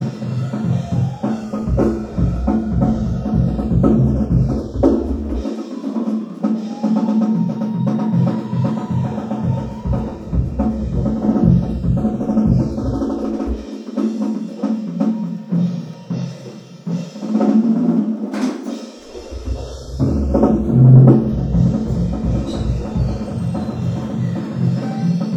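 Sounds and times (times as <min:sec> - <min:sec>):
drum kit: 0:00.0 - 0:25.3.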